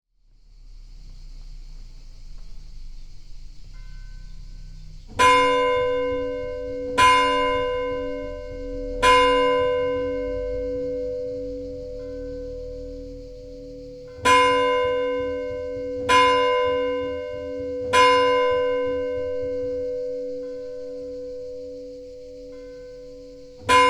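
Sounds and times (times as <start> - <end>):
church bells at noon: 5.2 - 23.8.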